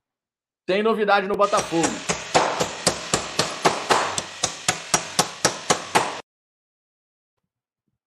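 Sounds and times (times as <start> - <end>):
speech: 0.7 - 2.1
builder hammering: 1.4 - 6.2.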